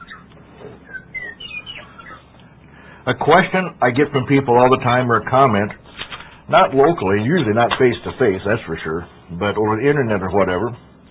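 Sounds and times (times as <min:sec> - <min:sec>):
small pet bird chirping: 0:00.0 - 0:02.4
low indoor hum: 0:00.0 - 0:11.1
speech: 0:03.1 - 0:05.8, 0:06.5 - 0:10.8.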